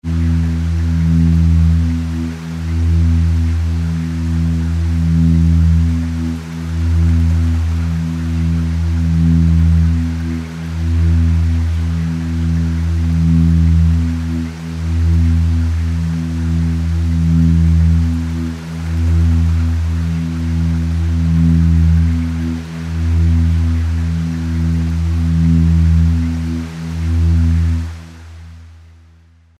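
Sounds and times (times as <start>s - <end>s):
atmospheric music: 0.0s - 29.5s.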